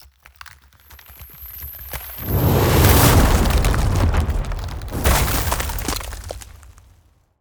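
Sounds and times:
ice spell area damage blast: 0:02.0 - 0:07.0.

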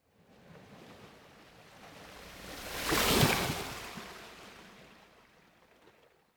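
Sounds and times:
gentle ocean water lapping on the coast: 0:00.2 - 0:06.3
ocean surf on the coast: 0:01.0 - 0:05.2.

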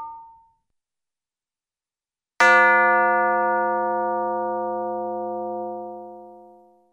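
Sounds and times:
cartoon boxing or fire bell hits: 0:02.4 - 0:06.7.

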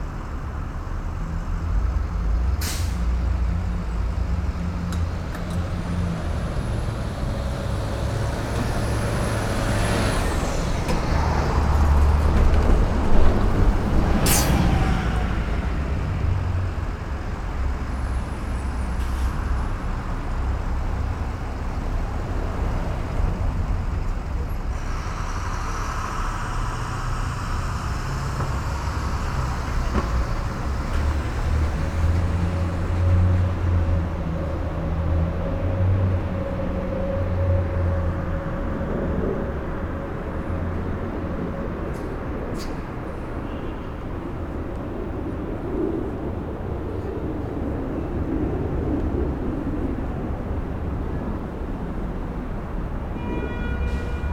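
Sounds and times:
light free-flowing urban traffic close by: 0:00.0 - 0:54.3.

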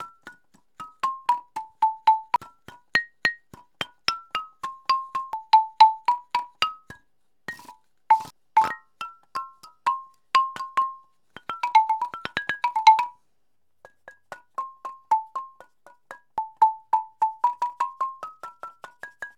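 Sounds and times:
native wood xylophone percussion: 0:00.0 - 0:19.3.

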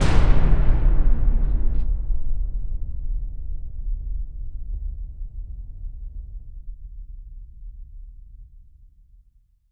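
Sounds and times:
cinematic metal impacts with boom: 0:00.0 - 0:03.7.

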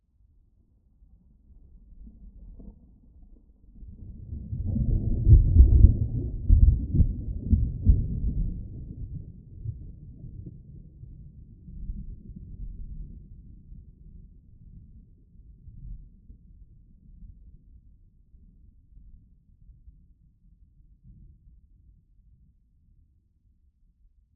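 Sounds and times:
very distant thunder: 0:04.0 - 0:10.6.

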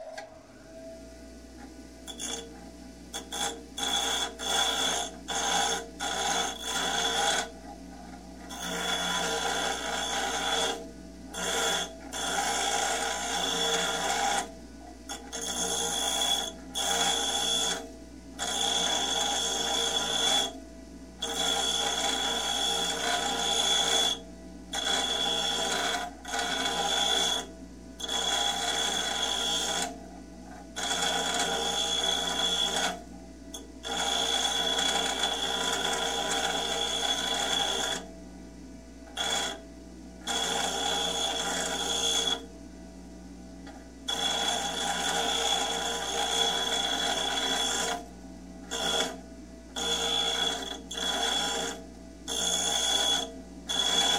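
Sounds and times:
construction grinder grinding metal: 0:02.1 - 0:07.6, 0:08.5 - 0:14.5, 0:15.1 - 0:20.5, 0:21.2 - 0:29.9, 0:30.7 - 0:32.9, 0:33.8 - 0:38.1, 0:40.3 - 0:42.4, 0:44.1 - 0:48.0, 0:49.8 - 0:54.1.

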